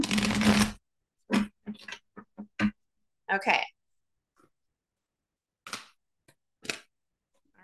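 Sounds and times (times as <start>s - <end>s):
deck of cards riffle-shuffled: 0.0s - 0.8s
speech: 3.3s - 3.7s.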